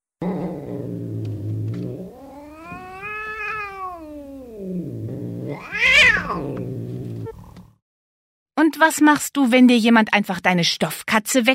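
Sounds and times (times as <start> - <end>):
anxious cat growling: 0.2 - 7.6
anxious cat yowling: 2.0 - 4.9, 5.5 - 6.6
speech: 8.6 - 11.5.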